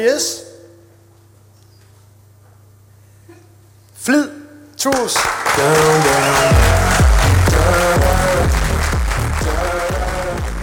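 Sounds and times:
speech: 0.0 - 0.5, 4.0 - 7.0
loud applause at award announcement: 5.2 - 10.6
upbeat music with repeating tonal swoops: 5.8 - 10.6.

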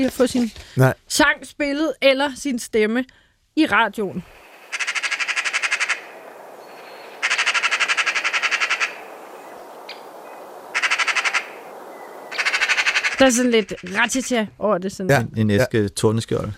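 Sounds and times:
speech: 0.0 - 4.4, 13.2 - 16.5
faint noise: 0.0 - 16.5
Eurasian magpie harsh rattling chatter: 4.4 - 14.4.

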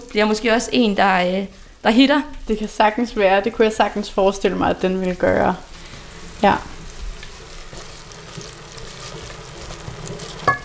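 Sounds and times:
speech: 0.1 - 5.7, 6.4 - 6.7
red curry paste and aromatics sizzling in a pot: 4.4 - 10.6.

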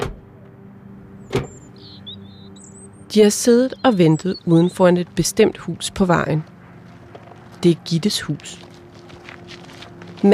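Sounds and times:
car doors closing on a residential street: 0.0 - 0.2, 1.3 - 1.6
steady low rumble: 0.1 - 10.3
speech: 3.1 - 6.5, 7.6 - 8.7.

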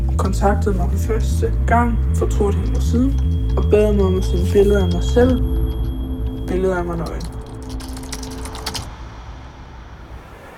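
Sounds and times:
speech: 0.2 - 5.5, 6.5 - 7.4
typing on a computer keyboard: 2.3 - 8.9.

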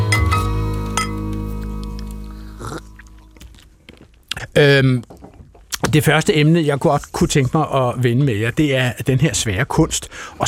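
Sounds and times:
glasses clinking together in a toast: 0.0 - 1.3
speech: 4.6 - 5.2, 5.9 - 10.4.

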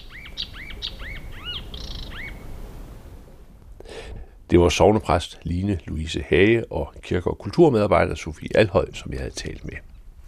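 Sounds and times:
nightingale singing: 0.0 - 2.6
speech: 4.5 - 9.9.

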